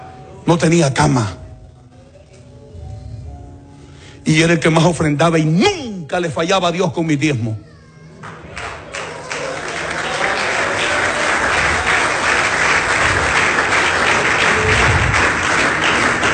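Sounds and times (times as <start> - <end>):
speech: 0.4 - 1.4, 4.3 - 7.7
audience applauding: 8.2 - 16.3.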